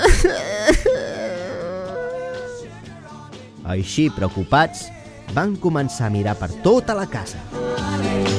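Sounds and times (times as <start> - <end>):
voice imitating a little bear crying: 0.0 - 2.7
speech: 3.7 - 8.3.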